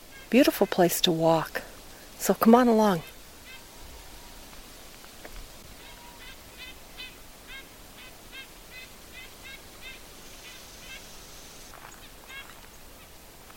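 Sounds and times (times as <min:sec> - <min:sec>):
speech: 0:00.3 - 0:03.1
red-breasted nuthatch nasal calls in boreal woods: 0:02.9 - 0:03.8, 0:05.6 - 0:13.5.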